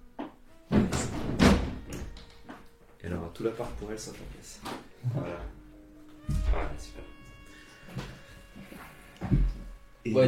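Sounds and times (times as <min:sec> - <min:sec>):
door thudding shut: 0:00.7 - 0:02.2
speech: 0:03.0 - 0:05.5, 0:10.0 - 0:10.2.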